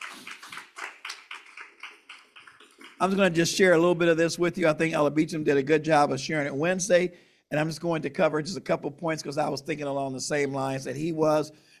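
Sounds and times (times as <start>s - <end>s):
church congregation hand clapping during a service: 0.0s - 4.0s
speech: 3.0s - 11.7s.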